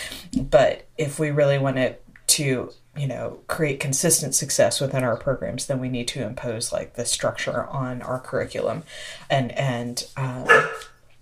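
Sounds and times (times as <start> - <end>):
speech: 0.5 - 10.9
dog barking: 10.5 - 11.0.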